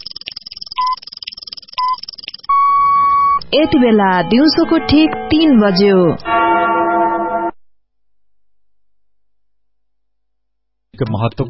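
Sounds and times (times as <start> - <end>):
radio station time check signal beeps and tone: 0.3 - 6.4
speech: 3.5 - 6.4, 11.0 - 11.4.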